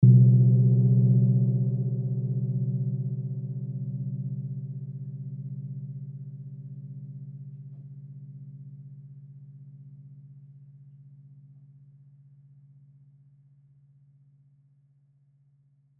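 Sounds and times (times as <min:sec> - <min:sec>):
small low gong soft hit: 0:00.0 - 0:08.4.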